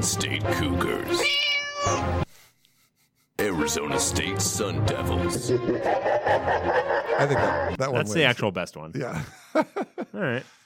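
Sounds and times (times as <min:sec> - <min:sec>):
speech: 0:00.0 - 0:02.2, 0:03.6 - 0:10.6
cat meowing: 0:01.2 - 0:02.1
laughter: 0:05.1 - 0:08.2, 0:09.0 - 0:10.4.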